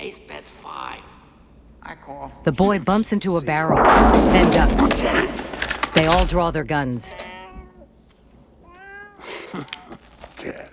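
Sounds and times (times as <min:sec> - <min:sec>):
speech: 0:00.0 - 0:01.2, 0:01.8 - 0:07.3, 0:09.5 - 0:10.7
black cat meowing near a poker table: 0:08.7 - 0:09.2.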